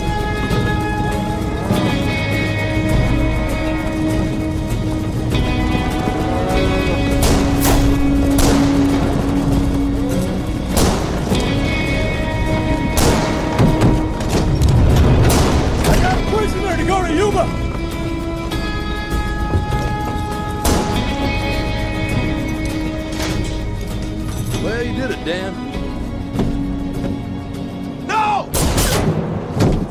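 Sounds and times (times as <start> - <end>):
orchestral film score: 0.0 - 29.8
gunshots in a film scene: 7.2 - 9.0, 10.7 - 11.5, 13.0 - 14.0, 15.1 - 16.2, 20.6 - 21.2, 28.6 - 29.8
people shouting: 28.0 - 28.6.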